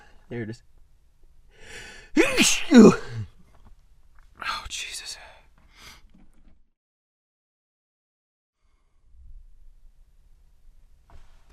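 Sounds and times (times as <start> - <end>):
speech: 0.3 - 0.8, 2.1 - 3.3
person sneezing: 1.7 - 3.3.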